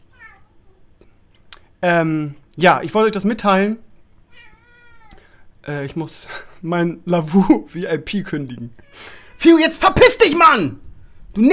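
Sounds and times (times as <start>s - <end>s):
tomcat meowing: 0.0s - 0.8s, 4.3s - 5.3s
speech: 1.8s - 3.9s, 5.6s - 10.8s, 11.4s - 11.5s.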